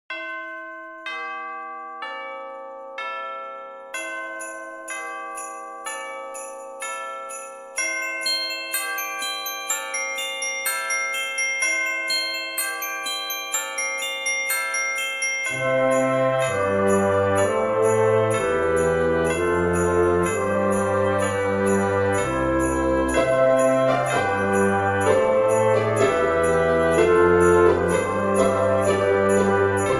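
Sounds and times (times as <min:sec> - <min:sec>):
church bells ringtone: 0:00.1 - 0:29.9.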